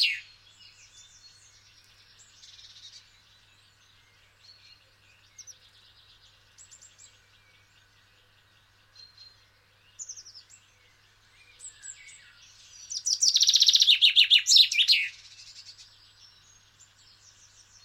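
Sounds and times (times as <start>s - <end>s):
common chaffinch Fringilla coelebs calls: 0.0s - 1.3s, 11.6s - 15.8s.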